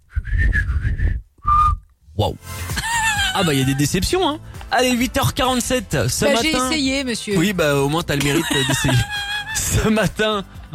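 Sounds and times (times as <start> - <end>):
person whistling a short tune: 0.1 - 1.9
laughter: 2.8 - 4.0, 8.2 - 10.0
speech: 3.4 - 10.7.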